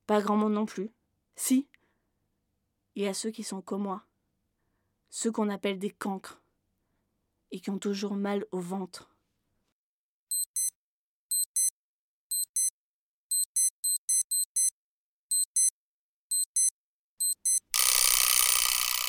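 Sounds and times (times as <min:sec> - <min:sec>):
speech: 0:00.1 - 0:01.8, 0:03.0 - 0:04.1, 0:05.1 - 0:06.4, 0:07.5 - 0:09.1
electronic alarm clock beeping: 0:10.3 - 0:10.7, 0:11.3 - 0:11.7, 0:12.3 - 0:12.7, 0:13.3 - 0:14.7, 0:15.3 - 0:15.7, 0:16.3 - 0:19.0.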